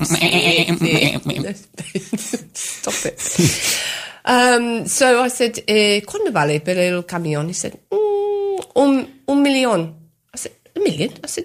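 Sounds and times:
person imitating goats bleating: 0.0s - 1.5s
speech: 0.0s - 3.7s, 4.3s - 8.0s, 8.8s - 11.4s.

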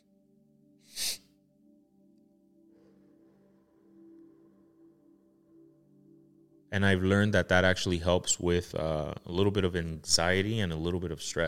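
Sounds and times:
sharp burst of breath in a breathing exercise: 0.9s - 1.3s
faint breathing in a breathing exercise: 2.6s - 5.2s
speech: 6.7s - 11.4s.

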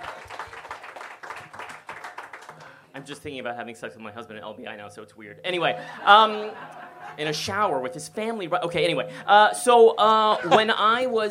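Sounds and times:
audience applause at a live show: 0.0s - 2.8s
speech: 3.0s - 11.2s
laughter: 5.7s - 7.2s, 10.2s - 11.2s.

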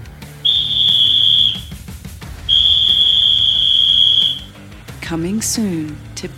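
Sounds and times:
referee whistle blasts: 0.4s - 1.8s, 2.5s - 4.5s
speech: 5.1s - 6.3s.

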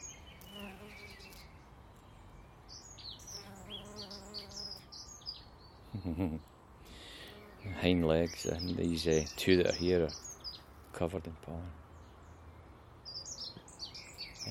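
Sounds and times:
faint birdsong: 0.0s - 14.5s
bees buzzing around a flowering plant: 0.4s - 1.5s, 3.1s - 5.0s
speech: 6.0s - 6.6s, 7.8s - 10.2s, 11.0s - 11.8s.

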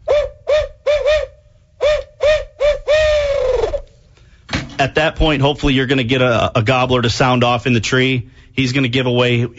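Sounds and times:
owl hooter turkey-hunting call imitating an owl: 0.0s - 3.9s
speech: 4.8s - 9.5s.

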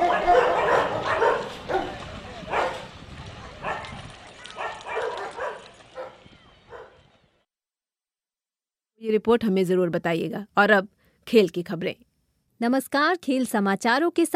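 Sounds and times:
dogs barking: 0.0s - 7.0s
speech: 9.1s - 14.3s.

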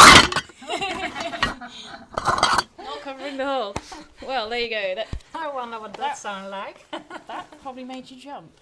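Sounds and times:
phone dropping into a box of tomato cans: 0.0s - 0.6s, 2.2s - 2.7s
rattling clatter of tomato cans: 2.2s - 2.6s
speech: 3.6s - 8.6s.

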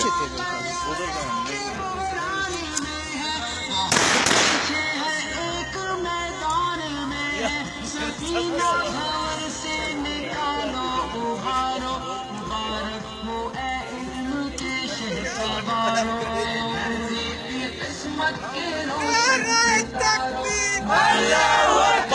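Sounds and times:
laughter: 0.0s - 0.8s, 6.9s - 12.0s, 14.7s - 22.1s
people talking: 0.0s - 3.9s, 4.8s - 22.1s
faint gunshot pops: 3.9s - 4.8s
gunfire burst during an anti-terrorist operation: 3.9s - 5.0s.

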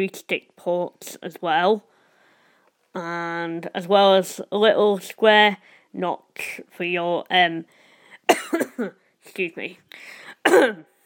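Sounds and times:
speech: 0.0s - 1.9s, 2.9s - 10.9s
man clearing his throat: 8.3s - 8.9s, 10.4s - 10.8s
man coughing: 8.3s - 9.0s, 10.4s - 10.9s.

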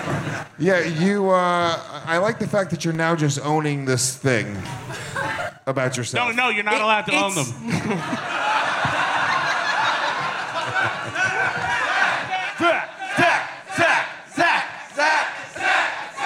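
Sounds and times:
speech: 0.4s - 8.6s
crowd loud rhythmic chant with shouted bursts: 7.0s - 16.2s
scattered laughter: 7.6s - 13.1s
large crowd roaring: 8.1s - 16.2s.

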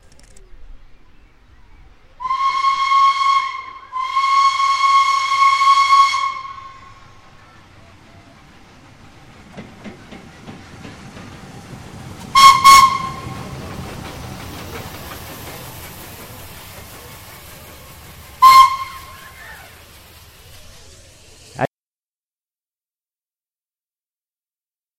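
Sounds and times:
train whistle: 2.2s - 7.0s, 12.3s - 13.5s, 18.4s - 19.4s.

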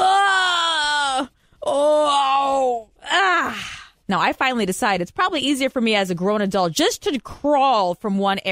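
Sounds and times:
person groaning while bending over to reach strawberry plants: 0.0s - 3.9s
speech: 4.1s - 8.4s.

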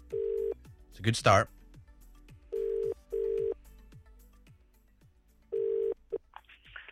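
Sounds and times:
telephone call ringing out on the line: 0.1s - 0.6s, 2.5s - 3.6s, 5.5s - 6.0s
speech: 1.0s - 1.6s.

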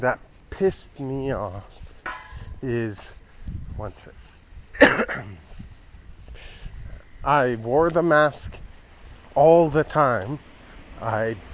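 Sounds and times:
speech: 0.0s - 1.8s, 2.6s - 4.2s, 4.8s - 5.5s, 7.2s - 8.6s, 9.4s - 11.5s
person nearly over a cold coughing: 4.8s - 5.4s.

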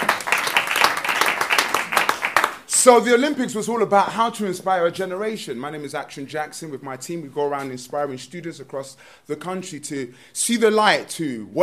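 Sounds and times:
audience applause: 0.0s - 2.6s
speech: 2.8s - 11.6s.

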